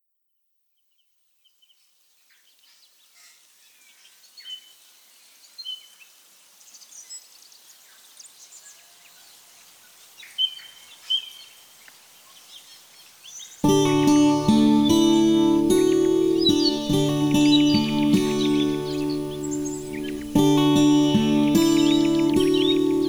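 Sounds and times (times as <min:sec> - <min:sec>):
ambient bass guitar: 0:13.7 - 0:23.0.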